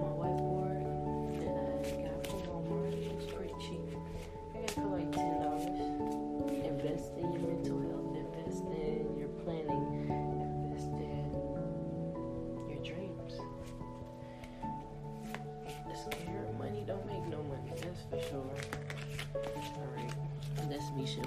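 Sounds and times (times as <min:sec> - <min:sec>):
steady sustained music: 0:00.0 - 0:21.2
deck of oracle cards being shuffled: 0:01.2 - 0:07.5, 0:14.4 - 0:16.3, 0:17.5 - 0:21.2.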